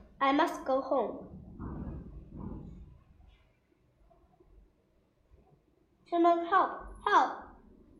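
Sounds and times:
speech: 0.2s - 1.4s, 6.1s - 7.4s
distant thunder rumbling as a storm approaches: 1.2s - 3.1s.

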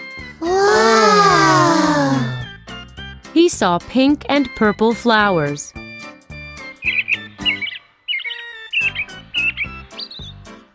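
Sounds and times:
soft gentle music: 0.0s - 10.7s
speech: 3.4s - 5.8s
birds chirping and calling: 6.8s - 10.5s.

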